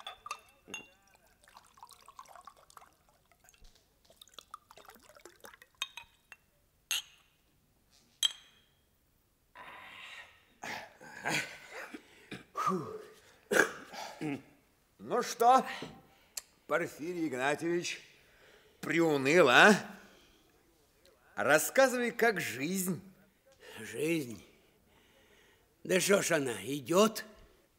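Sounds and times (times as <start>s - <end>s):
drinking glasses clinking: 0.0s - 2.8s, 4.9s - 7.4s, 8.2s - 8.8s
liquid being poured: 0.0s - 6.4s
speech: 15.2s - 16.0s, 16.7s - 18.1s, 18.8s - 20.0s, 21.4s - 23.1s, 23.8s - 24.5s, 25.9s - 27.3s.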